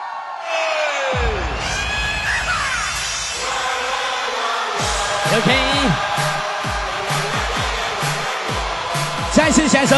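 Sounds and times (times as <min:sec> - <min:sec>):
audience screaming and cheering: 0:00.0 - 0:09.9
speech: 0:05.4 - 0:06.2, 0:09.5 - 0:09.9.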